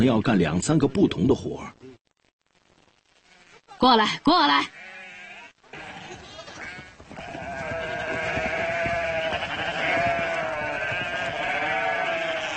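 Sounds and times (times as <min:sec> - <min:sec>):
speech: 0:00.0 - 0:02.0, 0:03.8 - 0:04.8
sheep and lambs bleating at a farm where lambs are being marked: 0:03.2 - 0:03.8, 0:04.4 - 0:12.5.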